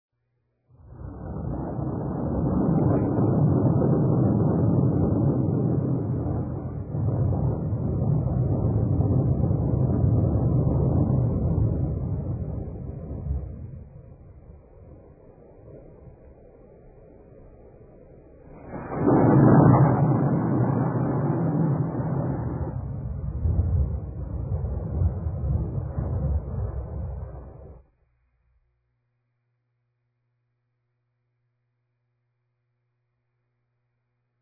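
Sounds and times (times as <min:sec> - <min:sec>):
thunder roll: 0:00.8 - 0:16.4, 0:18.4 - 0:27.8.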